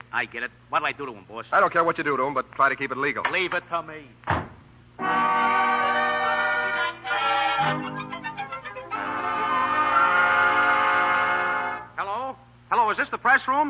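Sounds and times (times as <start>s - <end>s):
speech: 0.1s - 4.4s, 13.0s - 13.6s
train horn blaring: 5.0s - 12.0s.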